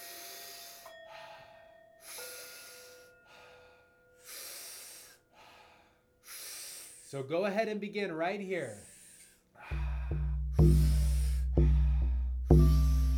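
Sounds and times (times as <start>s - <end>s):
powerful breathing through the mouth as a breathing exercise: 0.0s - 7.2s, 8.6s - 13.1s
speech: 7.1s - 8.9s.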